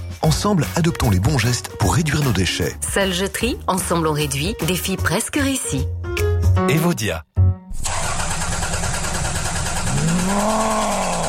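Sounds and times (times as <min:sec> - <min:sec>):
speech: 0:00.2 - 0:06.0, 0:06.6 - 0:07.3, 0:10.3 - 0:10.9
car engine in need of servicing cranking, sputtering and idling: 0:07.7 - 0:11.2.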